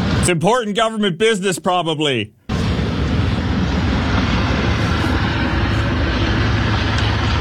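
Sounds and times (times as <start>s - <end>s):
helicopter flying overhead: 0.0s - 0.4s, 2.5s - 7.3s
speech: 0.3s - 2.4s.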